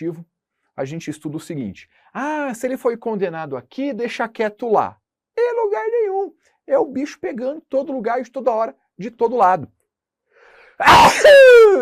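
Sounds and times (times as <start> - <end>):
speech: 0.0 - 5.0, 5.6 - 9.8, 10.8 - 11.8
man sneezing: 10.8 - 11.7.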